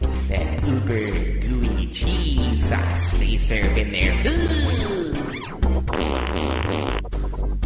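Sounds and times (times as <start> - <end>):
speech: 0.9 - 5.1
fart sound: 4.3 - 7.2.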